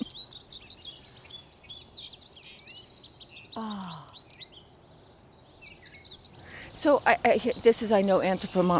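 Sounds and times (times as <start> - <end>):
goldfinches calling overhead: 0.0 - 8.7
speech: 3.6 - 4.1, 6.8 - 8.7.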